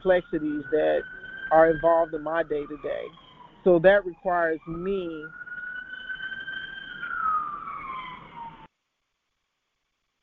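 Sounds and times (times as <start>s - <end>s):
speech: 0.0s - 5.4s
passing emergency vehicle siren wailing outdoors: 0.0s - 8.7s.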